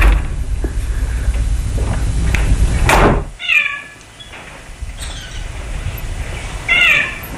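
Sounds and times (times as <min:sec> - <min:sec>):
heavy monastery door swinging shut with a thud: 0:00.0 - 0:03.4
low rumble: 0:00.0 - 0:07.3
squealing creaks from hinges or a lock as the door is locked: 0:04.2 - 0:05.4.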